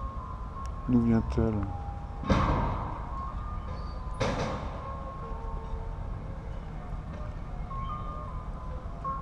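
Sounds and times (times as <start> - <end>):
gas delivery truck playing a repeating jingle: 0.0 - 9.2
street noise: 0.0 - 9.2
speech: 0.9 - 2.5
sharp bangs: 2.2 - 3.1.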